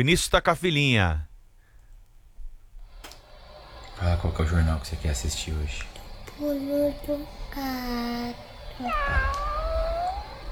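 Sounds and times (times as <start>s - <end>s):
speech: 0.0s - 1.3s, 4.0s - 9.5s
cat meowing: 8.8s - 10.5s.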